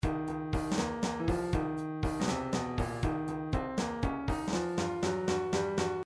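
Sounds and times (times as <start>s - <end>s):
MIDI drums playing a blues beat: 0.0s - 6.0s.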